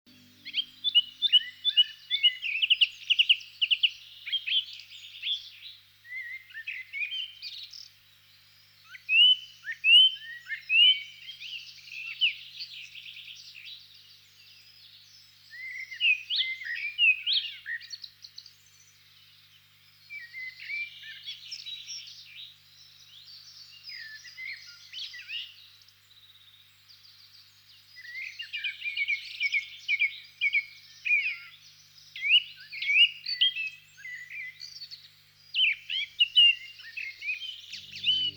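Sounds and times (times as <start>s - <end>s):
thrush singing: 0.1s - 38.3s.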